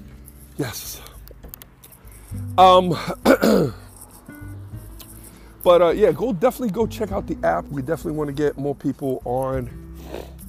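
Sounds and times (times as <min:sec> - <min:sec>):
speech: 0:00.6 - 0:01.1, 0:02.6 - 0:03.8, 0:05.6 - 0:10.4
person clearing throat: 0:03.0 - 0:03.9
person coughing: 0:03.0 - 0:03.9.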